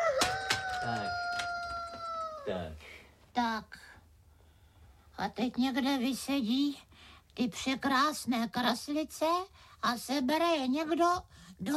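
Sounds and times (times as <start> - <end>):
rooster crowing: 0.0 - 2.5
speech: 2.5 - 3.9, 5.2 - 11.7.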